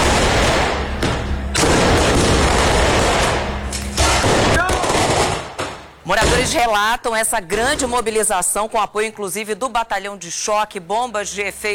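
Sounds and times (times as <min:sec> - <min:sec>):
firework rocket bursting into rapid crackling bangs: 0:00.0 - 0:06.6
speech: 0:06.5 - 0:11.7.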